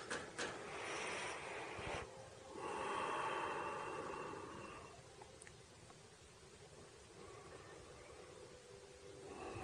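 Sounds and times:
long deep breaths in and out during a guided meditation: 0.6 - 5.1, 7.0 - 9.6.

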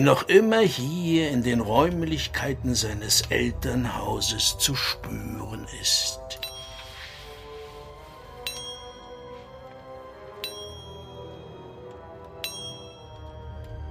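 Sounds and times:
speech: 0.0 - 6.5
small bells chiming: 6.4 - 7.0, 8.4 - 9.4, 10.4 - 13.9.

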